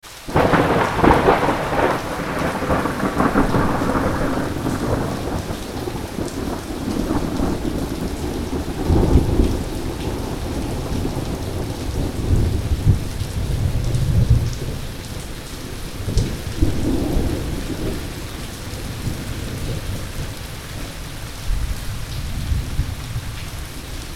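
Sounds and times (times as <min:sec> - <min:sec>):
rain: 0:00.0 - 0:24.1.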